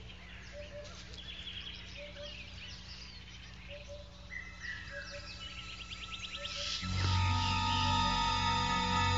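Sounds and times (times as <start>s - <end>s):
birds chirping: 0.0s - 9.1s
insects buzzing: 4.3s - 9.1s.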